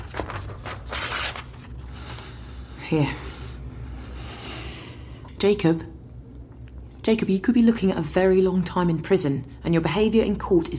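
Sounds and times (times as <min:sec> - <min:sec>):
paper rustling and crinkling: 0:00.0 - 0:02.4
speech: 0:02.9 - 0:03.3, 0:05.4 - 0:05.9, 0:07.1 - 0:10.7.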